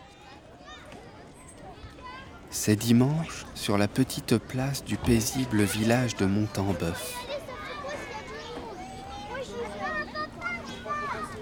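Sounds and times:
children shouting and chattering while playing outdoors in a village square: 0.0s - 11.3s
speech: 2.6s - 7.2s
children squealing: 7.7s - 11.3s.

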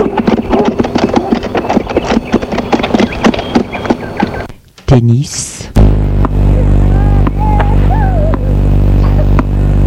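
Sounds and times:
horse hooves clip-clopping: 0.0s - 4.6s
faint hum: 4.2s - 9.8s
speech: 5.0s - 5.5s.

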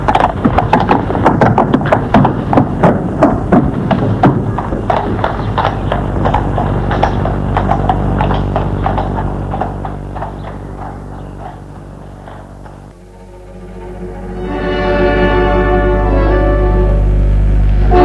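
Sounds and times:
horse hooves clip-clopping at a trot: 0.0s - 13.0s
low musical drone: 5.4s - 18.0s
swelling music: 12.0s - 18.0s.

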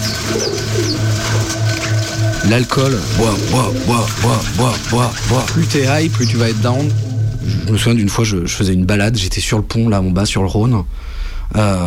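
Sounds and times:
pigeons cooing: 0.0s - 7.7s
light hiss: 0.0s - 11.8s
speech: 2.4s - 11.8s.

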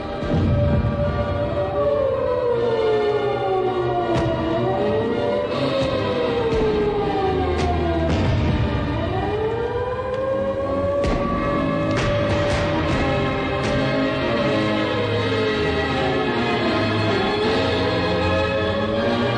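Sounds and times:
howling sirens wailing: 0.0s - 19.3s.

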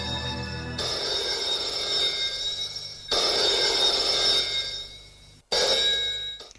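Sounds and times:
telephone ringing with shrill electronic trill: 0.0s - 6.5s.

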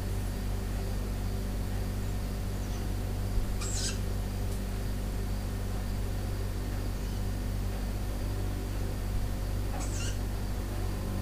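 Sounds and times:
fridge steady low droning hum indoors: 0.0s - 11.2s
owl giving a short shrill squeak: 3.6s - 4.0s, 9.8s - 10.2s.

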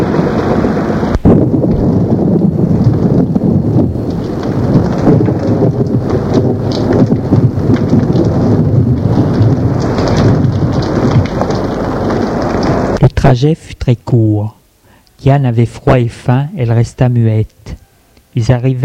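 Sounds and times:
gusts of wind buffeting the microphone: 0.0s - 13.0s
deep thunder rumbling: 0.0s - 13.2s
steady heavy rain in a thunderstorm: 0.0s - 13.2s
speech: 13.3s - 14.6s, 15.2s - 18.8s.

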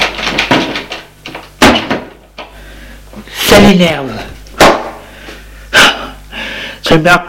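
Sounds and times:
locked door rattled and shaken: 0.0s - 2.2s
speech: 3.5s - 4.3s, 6.9s - 7.2s.

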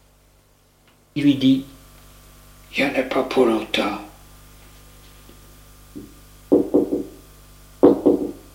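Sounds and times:
speech: 1.2s - 1.7s, 2.7s - 4.1s
hollow knocking on a door: 6.0s - 7.2s, 7.8s - 8.5s.

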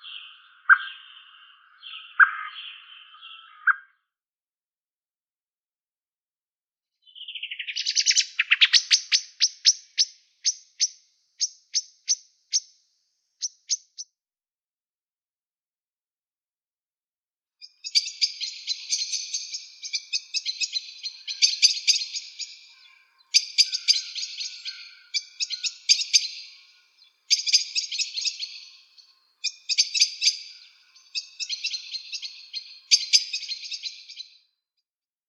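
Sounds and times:
barn swallow song of clicking notes and scratchy twittering warble: 0.0s - 4.0s, 7.0s - 14.2s, 17.6s - 34.5s.

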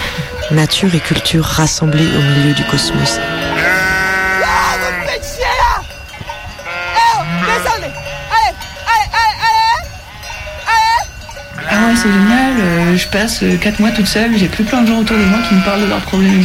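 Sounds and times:
bells clinking among the flock: 0.0s - 16.4s
speech: 0.5s - 3.7s, 11.9s - 16.4s
sheep bleating: 0.7s - 5.8s, 6.6s - 13.0s, 15.1s - 16.4s.

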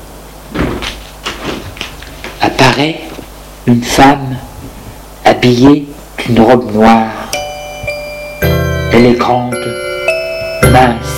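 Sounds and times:
apartment door opening with thumps and clunks: 0.5s - 2.0s
speech: 2.8s - 4.5s, 5.4s - 7.2s, 9.0s - 9.7s, 10.7s - 11.1s.

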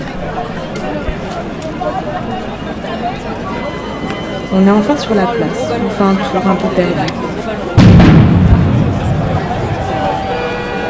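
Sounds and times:
steady murmur of a large outdoor crowd at a street protest: 0.0s - 10.8s
speech: 4.5s - 7.3s
loud firecracker blast at a street protest: 7.8s - 10.5s.

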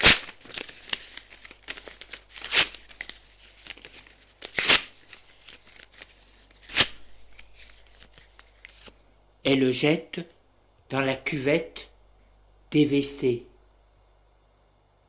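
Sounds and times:
diary page ripping: 0.0s - 9.0s
speech: 9.5s - 11.9s, 12.7s - 13.5s.

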